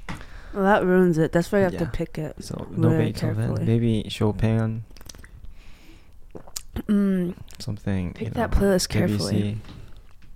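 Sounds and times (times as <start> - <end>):
speech: 0.5 - 5.0, 6.9 - 9.8
person sipping water: 4.9 - 7.6
mouth clicks: 6.2 - 7.6
person swallowing: 6.3 - 7.6.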